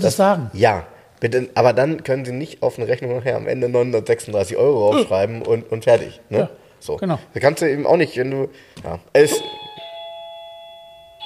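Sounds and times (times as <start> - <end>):
speech: 0.0 - 9.8
electronic doorbell chiming: 9.3 - 11.2.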